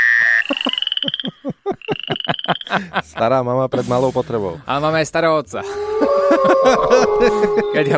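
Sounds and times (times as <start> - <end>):
frogs croaking: 0.0 - 2.8
laughter: 0.3 - 4.0, 5.6 - 7.9
speech: 2.5 - 7.9.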